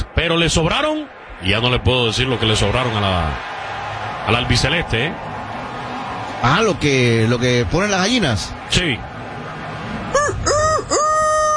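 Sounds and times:
speech: 0.2s - 3.5s, 4.3s - 5.3s, 6.4s - 9.1s
rooster crowing: 10.1s - 11.5s.

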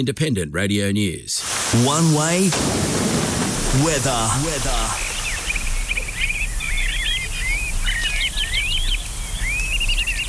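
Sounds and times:
speech: 0.0s - 5.1s
birds chirping and warbling: 2.8s - 10.2s.

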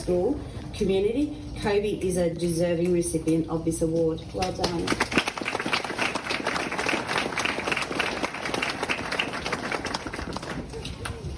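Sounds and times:
speech: 0.0s - 5.2s
audience clapping at an award ceremony for young people: 4.4s - 11.2s.

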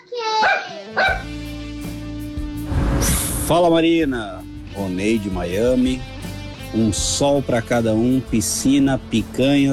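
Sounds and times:
pet dog barking and yipping in São Paulo, Brazil: 0.4s - 1.3s
speech: 3.5s - 6.2s, 6.7s - 9.7s.

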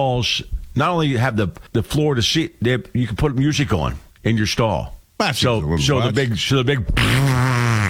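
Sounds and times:
speech: 0.0s - 7.6s
voice imitating a loud buzzing elephant fart: 6.9s - 7.8s.

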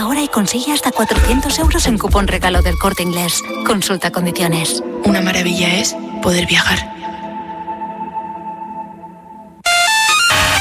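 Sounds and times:
speech: 0.3s - 7.0s
glitchy distorted mobile phone ringtone: 9.7s - 10.6s.

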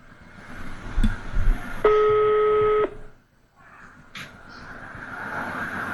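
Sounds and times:
faint noise: 0.0s - 5.9s
telephone ringback tone while a call is being placed: 1.9s - 3.0s.

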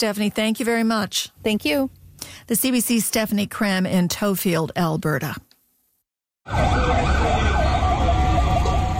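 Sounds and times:
speech: 0.0s - 5.5s, 6.4s - 7.1s
low rumble of engines and traffic in Caracas: 1.2s - 2.7s, 6.5s - 8.9s
fire truck sirens wailing at night in Caracas Venezuela: 6.4s - 8.9s.

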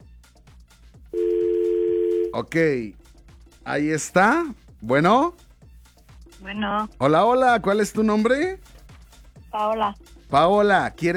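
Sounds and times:
steady telephone tone on an incoming call-in line: 1.2s - 2.4s
speech: 2.4s - 3.0s, 3.7s - 5.4s, 6.4s - 8.7s, 9.5s - 11.1s.

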